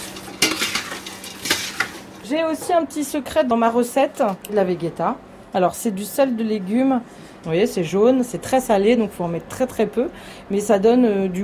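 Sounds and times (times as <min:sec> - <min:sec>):
utensil clanking and scraping against a large pot: 0:00.0 - 0:02.7
speech: 0:02.3 - 0:11.4.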